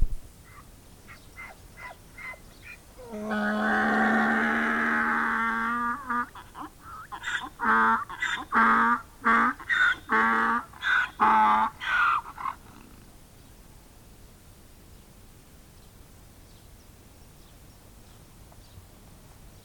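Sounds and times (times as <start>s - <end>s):
donkey braying: 0.4s - 12.9s.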